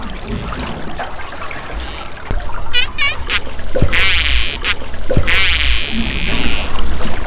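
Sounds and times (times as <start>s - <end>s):
Risso's dolphin clicks: 1.8s - 7.2s.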